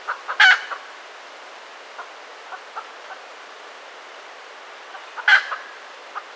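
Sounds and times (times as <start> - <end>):
red junglefowl loud harsh squawks: 0.0 - 0.9, 5.2 - 5.7.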